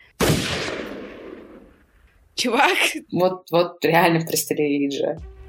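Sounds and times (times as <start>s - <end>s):
single sharp pistol shot with long echo: 0.2s - 1.8s
speech: 2.4s - 5.3s.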